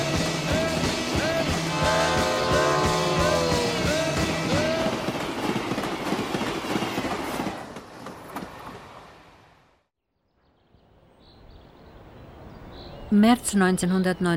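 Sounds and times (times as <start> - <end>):
train rolling on rails near Kittsee crossing the East-West border: 0.1 - 8.8
speech: 13.2 - 14.3.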